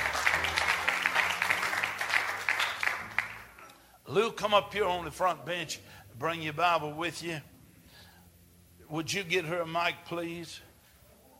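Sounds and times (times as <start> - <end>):
crowd clapping: 0.0 - 3.7
speech: 4.1 - 7.5, 8.9 - 10.7.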